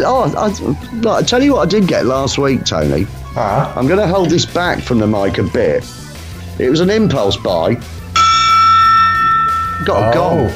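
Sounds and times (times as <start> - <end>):
speech: 0.0 - 6.0, 6.6 - 8.0, 9.8 - 10.5
small desktop gong struck and ringing: 8.2 - 10.5.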